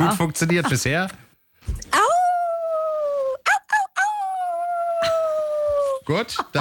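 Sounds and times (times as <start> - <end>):
speech: 0.1 - 2.1, 6.1 - 6.5
listener imitating a wolf howl: 2.0 - 6.0.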